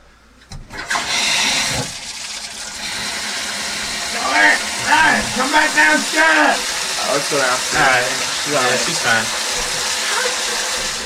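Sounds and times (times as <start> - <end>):
water gushing from a bathtub tap: 0.7 - 11.0
speech: 5.5 - 9.4.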